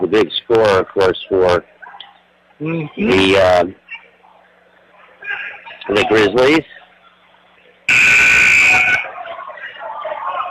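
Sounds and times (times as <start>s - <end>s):
noise: 0.0s - 10.4s
speech: 0.1s - 1.7s, 2.6s - 3.8s, 5.8s - 6.8s
basketball game buzzer: 7.9s - 9.0s.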